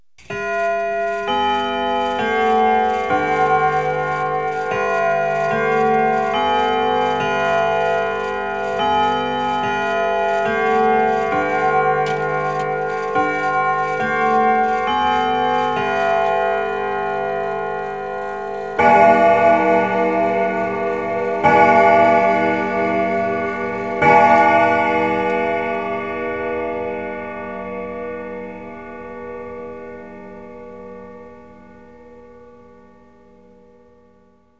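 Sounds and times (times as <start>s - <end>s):
household chimes: 0.2s - 26.4s.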